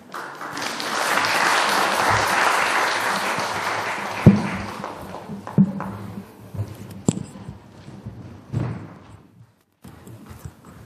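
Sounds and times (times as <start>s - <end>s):
audience at a church worship service applauding: 0.0s - 5.9s
louder thumps: 5.3s - 10.8s.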